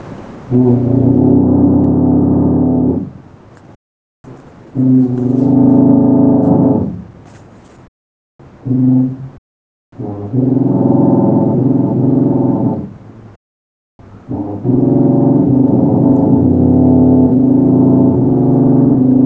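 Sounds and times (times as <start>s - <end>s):
low tuba note: 0.5s - 3.2s, 4.8s - 7.0s, 8.6s - 9.4s, 10.0s - 12.9s, 14.3s - 19.2s.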